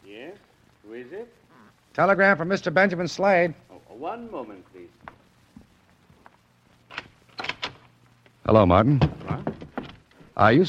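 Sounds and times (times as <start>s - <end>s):
speech: 2.0s - 4.9s, 8.5s - 9.5s, 10.4s - 10.6s
door unlatched and opened at night: 6.9s - 7.9s.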